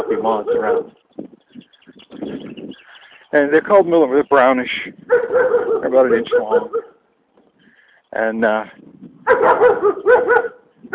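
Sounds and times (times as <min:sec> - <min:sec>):
dog barking while chasing someone off: 0:00.0 - 0:01.0, 0:05.1 - 0:07.0, 0:09.2 - 0:10.9
speech: 0:00.0 - 0:01.0, 0:03.3 - 0:06.8, 0:08.1 - 0:10.9.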